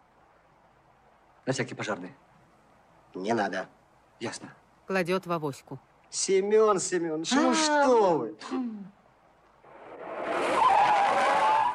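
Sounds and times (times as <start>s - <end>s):
car road noise: 0.0s - 7.3s, 9.0s - 11.7s
speech: 1.5s - 2.3s, 3.1s - 9.0s
car tire screech braking at a traffic light: 9.6s - 11.7s.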